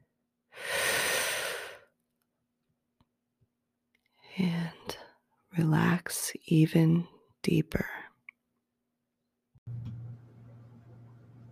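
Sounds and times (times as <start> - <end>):
deep breath: 0.5 - 1.9
speech: 4.4 - 5.0, 5.6 - 8.1.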